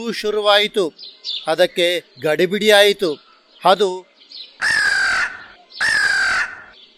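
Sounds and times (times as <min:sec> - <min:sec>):
speech: 0:00.0 - 0:04.8
crow cawing: 0:04.6 - 0:06.8.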